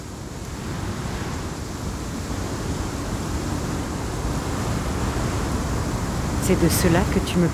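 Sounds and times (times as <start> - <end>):
strong gusty wind blowing before a storm: 0.0 - 7.5
speech: 6.5 - 7.5.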